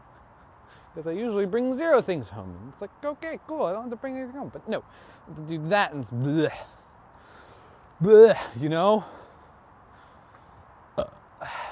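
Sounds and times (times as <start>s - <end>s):
speech: 1.0s - 6.8s, 8.0s - 9.2s
person burping: 11.0s - 11.7s.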